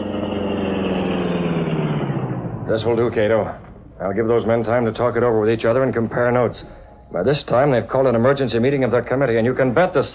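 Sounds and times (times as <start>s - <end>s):
car engine idling in a dark alley: 0.0s - 7.6s
speech: 2.7s - 10.1s.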